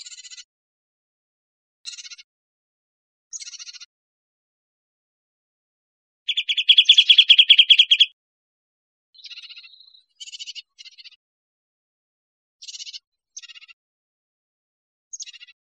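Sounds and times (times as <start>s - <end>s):
bird trilling in Costa Rica: 6.3s - 8.1s.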